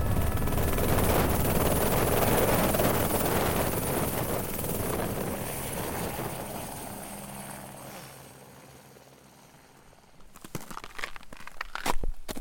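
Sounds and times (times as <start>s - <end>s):
rushing wind noise: 0.0s - 6.3s
helicopter rotor thrum while landing on a glacier: 0.0s - 7.8s.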